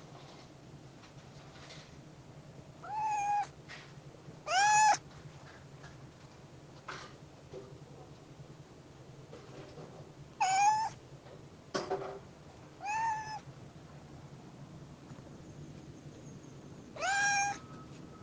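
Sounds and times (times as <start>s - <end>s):
kitten on a wall giving plaintive mews: 2.8s - 3.5s, 4.5s - 5.0s, 10.4s - 11.0s, 12.8s - 13.5s, 17.0s - 17.6s.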